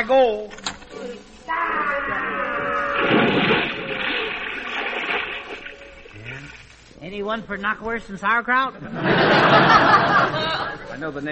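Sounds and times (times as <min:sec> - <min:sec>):
speech: 0:00.0 - 0:03.7, 0:07.1 - 0:11.3
churning, bubbling boiling water in a pot: 0:02.1 - 0:07.1
splash into a huge pot of boiling water: 0:03.0 - 0:06.8
laughter: 0:08.8 - 0:11.1.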